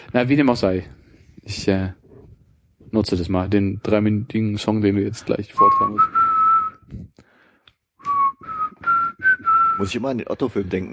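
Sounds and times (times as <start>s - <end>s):
speech: 0.1s - 2.0s, 2.9s - 6.2s, 6.9s - 7.2s, 9.8s - 10.9s
person whistling a short melodic tune: 5.6s - 6.9s, 8.0s - 9.9s.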